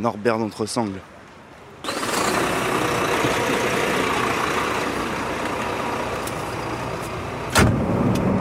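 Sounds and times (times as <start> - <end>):
speech: 0.0 - 1.1
big red truck engine idling outside the train station in Le Havre: 1.6 - 8.0.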